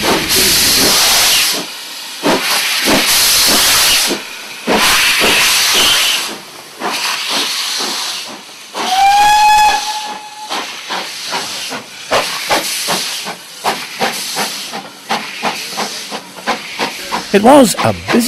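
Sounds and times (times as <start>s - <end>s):
steam locomotive venting hissing steam: 0.0s - 18.2s
steam locomotive whistle blast: 8.8s - 10.6s
speech: 17.4s - 18.2s.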